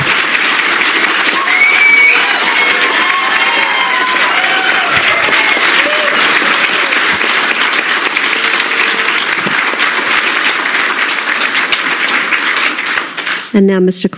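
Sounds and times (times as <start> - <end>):
audience applause: 0.0 - 13.6
speech: 13.6 - 14.1.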